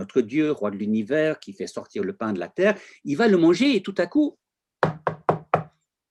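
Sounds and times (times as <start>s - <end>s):
speech: 0.0s - 4.4s
firm knocks on a wooden door: 4.8s - 5.8s.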